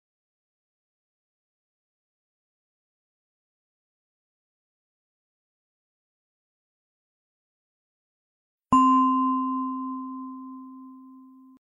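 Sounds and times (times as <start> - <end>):
meditation bell ringing: 8.8 - 11.6.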